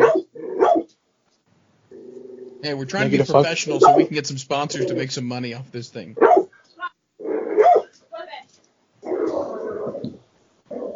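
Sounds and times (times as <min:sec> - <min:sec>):
dog barking: 0:00.0 - 0:00.9, 0:03.8 - 0:04.1, 0:06.2 - 0:06.5, 0:07.5 - 0:07.9
speech: 0:02.6 - 0:06.5.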